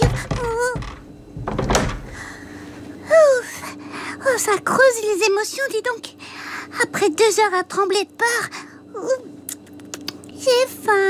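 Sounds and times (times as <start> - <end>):
door shutting: 0.0 - 2.4
speech: 4.4 - 9.3, 10.4 - 11.0.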